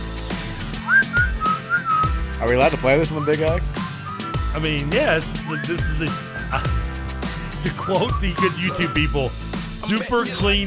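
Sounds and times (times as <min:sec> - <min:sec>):
low musical backing: 0:00.0 - 0:10.6
whistled hook in a pop song: 0:00.6 - 0:10.6
speech: 0:02.4 - 0:03.8, 0:04.5 - 0:06.8, 0:07.6 - 0:10.6.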